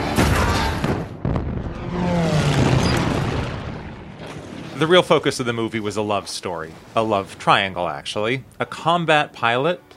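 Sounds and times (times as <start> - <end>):
continuous roar: 0.0 - 7.4
booming explosions in a movie battle scene: 0.1 - 5.1
speech: 4.8 - 9.9.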